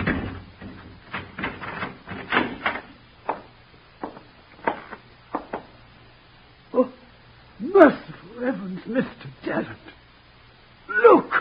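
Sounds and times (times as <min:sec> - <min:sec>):
door knocks and clunks: 0:00.0 - 0:05.7
speech: 0:07.8 - 0:09.9.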